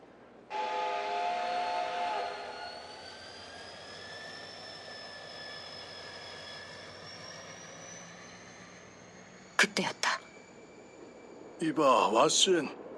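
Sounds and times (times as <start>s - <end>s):
steam train whistle blowing a long shrill blast: 0.5s - 7.7s
hissing rumbling background: 9.1s - 12.9s
speech: 9.6s - 10.1s, 11.6s - 12.8s.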